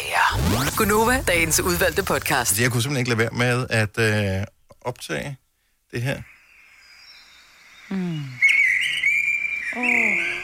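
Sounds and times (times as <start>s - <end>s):
speech: 0.8s - 6.4s, 7.9s - 8.4s, 9.7s - 10.3s
Eurasian blackbird singing in Frederiksberg: 7.0s - 10.4s
person making low drawn-out vocal sounds: 7.9s - 8.4s.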